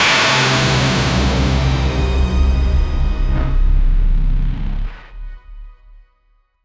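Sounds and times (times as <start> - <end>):
aggressive cyberpunk synth: 0.4 - 5.1.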